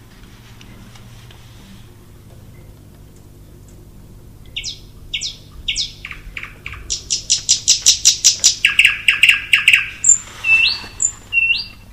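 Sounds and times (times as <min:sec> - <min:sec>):
thrush nightingale singing: 0:04.6 - 0:11.9.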